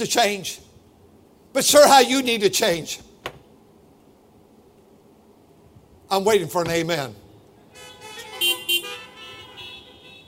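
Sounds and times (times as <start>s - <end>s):
speech: 0.0s - 0.7s, 1.5s - 3.1s, 6.1s - 7.2s
car horn honking: 7.7s - 10.2s.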